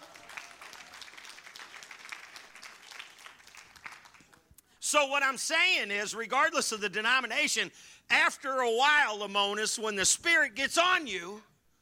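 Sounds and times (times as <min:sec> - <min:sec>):
crowd applauding: 0:00.0 - 0:04.5
speech: 0:04.9 - 0:11.5.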